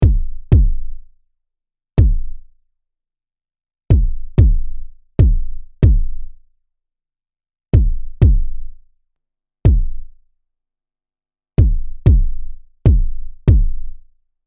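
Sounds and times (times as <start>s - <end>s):
kick drums: 0.0s - 0.9s, 2.0s - 2.4s, 3.9s - 6.2s, 7.8s - 8.6s, 9.7s - 10.0s, 11.6s - 13.9s.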